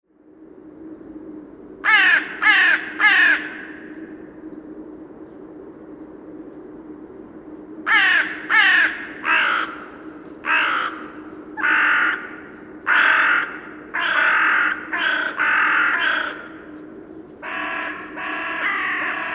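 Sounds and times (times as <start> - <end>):
black crow calling: 1.8 - 3.9, 7.9 - 16.7, 17.4 - 19.3.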